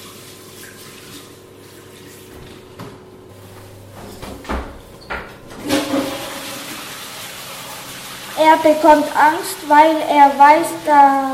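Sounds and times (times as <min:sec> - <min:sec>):
water splashing and rushing in a toilet bowl: 0:00.0 - 0:11.3
low thumps and knocks: 0:02.3 - 0:06.3
speech: 0:08.4 - 0:11.3.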